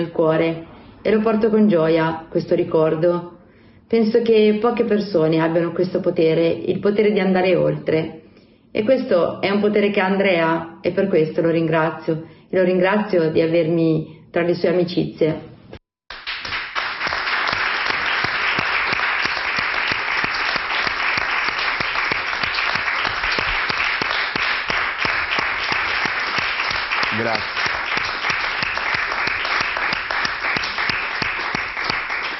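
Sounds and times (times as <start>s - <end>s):
speech: 0.0s - 15.5s
large audience applauding: 16.1s - 32.3s.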